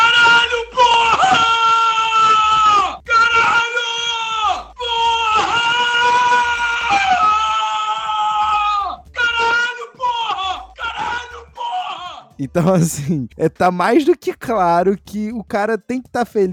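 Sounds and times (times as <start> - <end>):
football fan screaming and wailing in excitement: 0.0 - 12.3
laughter: 12.5 - 13.3
speech: 12.5 - 16.5.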